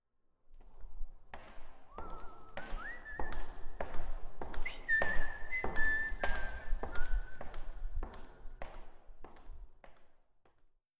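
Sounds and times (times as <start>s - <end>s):
menu intro whistle melody: 2.0s - 3.5s, 4.4s - 7.6s.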